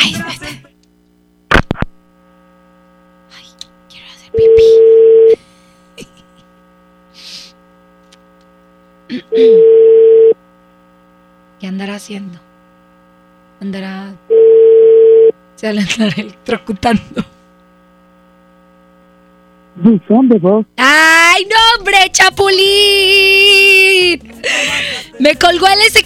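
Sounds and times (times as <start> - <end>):
constant electrical hum: 0.0 - 26.0
long steady phone ringing tones: 4.4 - 5.4, 9.4 - 10.4, 14.3 - 15.3
speech: 9.4 - 9.7, 11.8 - 12.5, 13.6 - 14.4, 15.6 - 17.4, 19.8 - 26.0.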